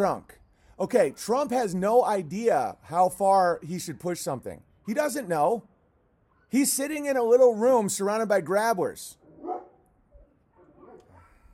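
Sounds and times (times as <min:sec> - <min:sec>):
speech: 0:00.0 - 0:05.7, 0:06.5 - 0:09.2
dog barking faintly: 0:09.3 - 0:09.8, 0:10.5 - 0:11.5.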